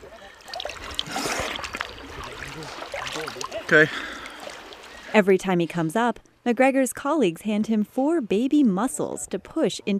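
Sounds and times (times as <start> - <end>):
diver splashing water at river surface: 0.0 - 6.0
speech: 2.6 - 4.1, 5.1 - 9.9.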